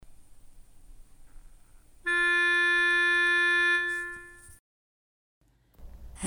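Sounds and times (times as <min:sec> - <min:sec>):
lead melody: 0:02.1 - 0:04.6.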